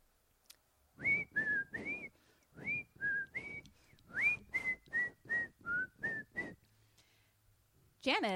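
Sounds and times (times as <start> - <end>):
person whistling a tune: 1.0 - 6.6
speech: 8.0 - 8.3.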